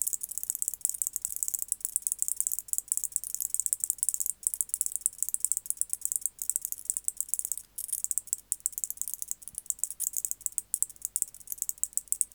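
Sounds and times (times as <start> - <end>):
White-faced bush-cricket Decticus albifrons song: 0.0 - 12.3.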